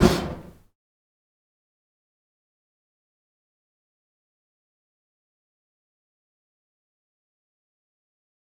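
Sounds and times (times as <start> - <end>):
fire staff whooshing: 0.0 - 0.6.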